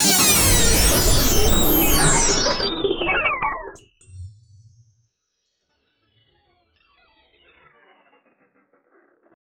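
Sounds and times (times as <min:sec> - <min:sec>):
sci-fi glitch effect: 0:00.0 - 0:03.8.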